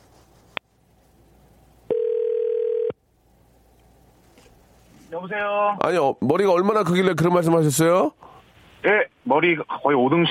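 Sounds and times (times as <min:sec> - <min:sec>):
telephone ringback tone while placing a call: 0:01.9 - 0:03.0
speech: 0:05.2 - 0:10.2.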